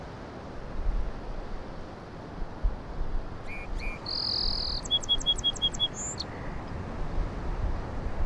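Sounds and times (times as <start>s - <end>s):
surf crashing: 0.8s - 8.2s
song sparrow singing on an island: 3.4s - 6.6s.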